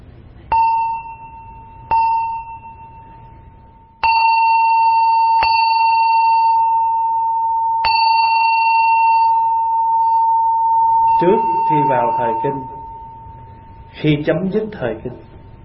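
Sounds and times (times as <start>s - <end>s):
Buddhist chanting bell struck and ringing: 0.5s - 3.2s, 4.0s - 13.8s
speech: 11.2s - 12.8s, 14.0s - 15.3s.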